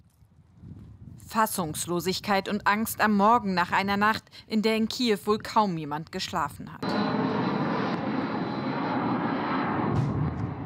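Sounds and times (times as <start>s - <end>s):
speech: 1.3s - 7.0s
attack drone engine flying overhead: 6.8s - 10.6s.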